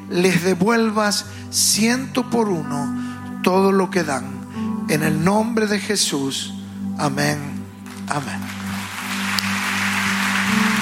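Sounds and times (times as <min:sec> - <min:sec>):
sustained low musical drone: 0:00.0 - 0:10.8
speech: 0:00.1 - 0:07.5, 0:08.1 - 0:08.6
audience applauding: 0:07.8 - 0:10.8.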